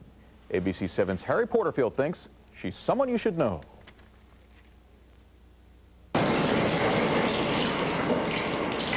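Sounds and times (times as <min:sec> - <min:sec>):
speech: 0:00.5 - 0:03.7
water running from a faucet: 0:06.2 - 0:08.9.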